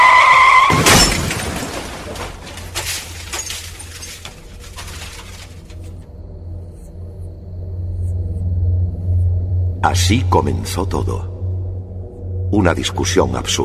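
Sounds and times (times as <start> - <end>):
car tires screeching in a road accident: 0.0 - 2.0
car crashing in a late-night road accident: 0.0 - 6.0
debris scattering after a car crash: 0.4 - 6.1
glass breaking in a car accident: 0.7 - 5.8
low rumbling hum: 0.8 - 13.6
speech: 10.1 - 11.3, 12.5 - 13.6.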